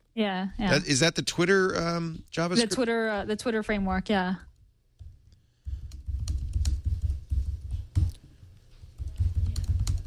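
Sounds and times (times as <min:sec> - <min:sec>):
speech: 0:00.2 - 0:04.5
typing on a computer keyboard: 0:05.0 - 0:08.2, 0:09.0 - 0:10.0.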